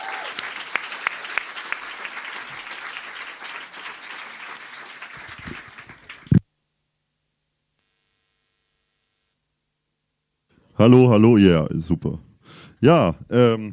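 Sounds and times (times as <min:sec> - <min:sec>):
audience applause welcoming a performer in a Ratskeller cellar venue: 0:00.0 - 0:06.4
speech: 0:10.8 - 0:13.7.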